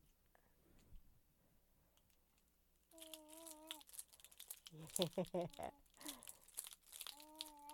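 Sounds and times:
small child cooing and vocalizing: 2.9 - 3.9, 7.0 - 7.7
toy keys on a small ring rattling: 2.9 - 7.7.

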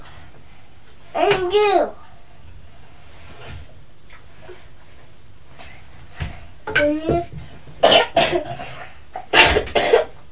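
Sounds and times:
speech: 1.1 - 2.0
harsh wet coughs: 7.8 - 10.1.

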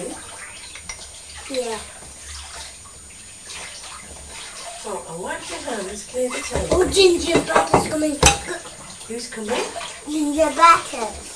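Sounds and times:
water running while washing up dishes at home: 0.0 - 11.3
speech: 1.5 - 2.0, 4.9 - 11.3.

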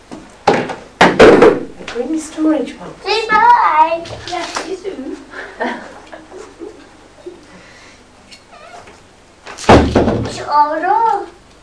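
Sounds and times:
soft talk: 2.0 - 5.3
speech: 2.0 - 5.9, 10.3 - 11.4
child speaking: 2.1 - 5.1, 10.3 - 11.4
door shut at home: 9.6 - 10.4.

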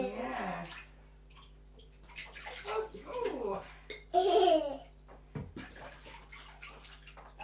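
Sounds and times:
bath water pouring and splashing onto a person's tummy: 0.4 - 3.7, 5.5 - 7.4.

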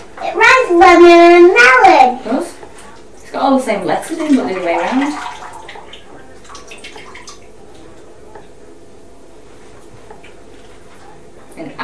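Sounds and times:
water splashing in a bathtub: 0.2 - 8.6
speech: 0.7 - 1.6, 3.5 - 5.3
water dripping in a bathtub: 2.9 - 8.5.

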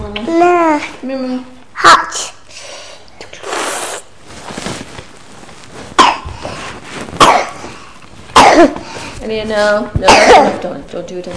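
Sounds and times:
speech: 0.3 - 2.4, 8.6 - 11.3
person coughing: 7.2 - 7.6, 8.4 - 8.8, 10.1 - 10.6.

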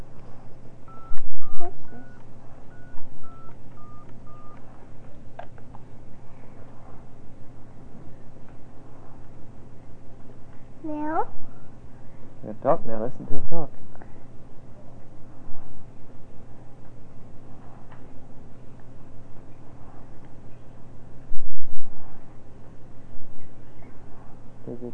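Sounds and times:
constant low hum: 0.0 - 24.9
telephone dialing tones from a call to a time service: 0.9 - 4.6
speech: 12.6 - 13.8.

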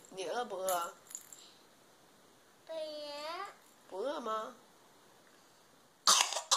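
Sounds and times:
speech: 0.2 - 1.0, 3.9 - 4.6
child coughing: 6.1 - 6.5.

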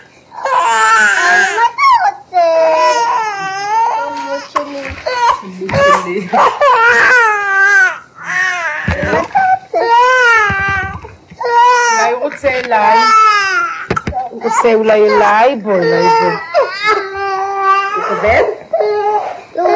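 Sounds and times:
baby boy crying while being held: 0.3 - 19.7
speech: 14.6 - 16.5, 18.2 - 18.6.

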